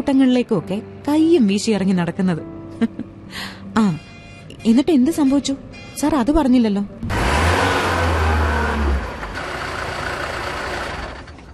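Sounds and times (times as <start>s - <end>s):
speech: 0.0s - 7.2s
bus engine rumbling and stopping suddenly: 7.0s - 11.5s.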